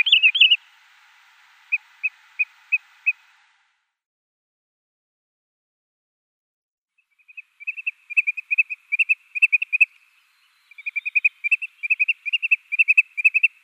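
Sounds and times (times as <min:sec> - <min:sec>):
wood sandpiper display calls in display flight: 0:00.0 - 0:00.7, 0:01.6 - 0:03.3, 0:07.2 - 0:13.6.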